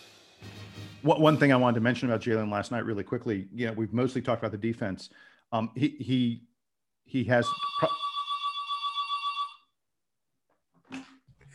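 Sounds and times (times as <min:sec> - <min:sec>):
speech: 0:01.0 - 0:06.5, 0:07.1 - 0:08.0
home telephone ringing with a trilling burst: 0:07.4 - 0:09.7.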